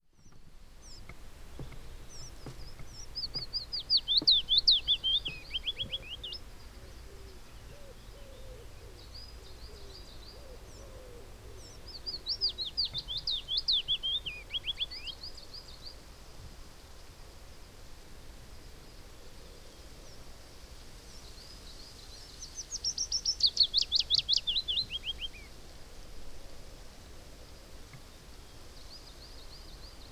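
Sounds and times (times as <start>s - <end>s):
Willow Warbler Phylloscopus trochilus trochilus: 0.1s - 16.1s, 21.1s - 25.6s.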